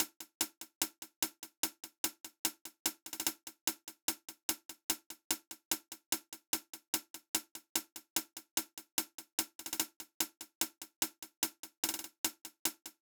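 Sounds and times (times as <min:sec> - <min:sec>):
hi-hat drum loop: 0:00.0 - 0:13.0.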